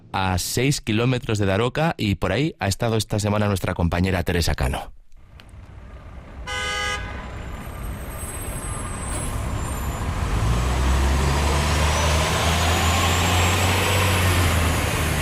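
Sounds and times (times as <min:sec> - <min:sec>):
speech: 0:00.2 - 0:05.0
car engine and tyre roar on a road from Zaragoza to Nombrevilla: 0:05.3 - 0:15.2
car horn toot: 0:06.4 - 0:07.8.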